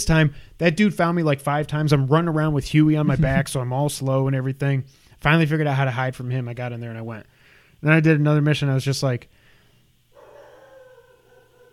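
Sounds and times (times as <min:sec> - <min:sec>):
speech: 0:00.0 - 0:09.4
laughter: 0:03.0 - 0:03.5
dog barking: 0:10.2 - 0:11.7.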